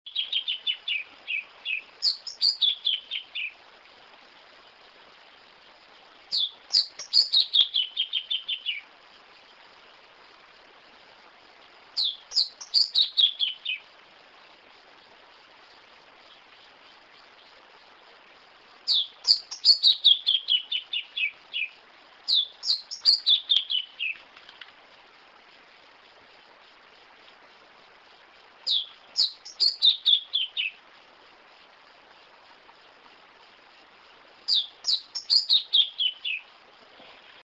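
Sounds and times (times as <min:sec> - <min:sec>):
pia cobra bird singing: 0:00.1 - 0:03.6, 0:06.3 - 0:08.8, 0:12.0 - 0:13.8, 0:18.9 - 0:21.7, 0:22.3 - 0:24.2, 0:28.7 - 0:30.8, 0:34.5 - 0:36.5.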